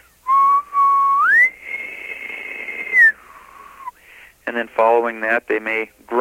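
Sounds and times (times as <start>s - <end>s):
person whistling in imitation of an elk bugle: 0.3s - 4.0s
speech: 4.6s - 6.2s.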